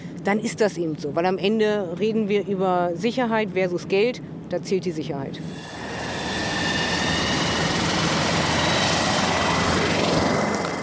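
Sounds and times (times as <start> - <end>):
speech: 0.2 - 5.8
helicopter flying over the sea carrying technicians to offshore wind turbines: 5.4 - 10.8.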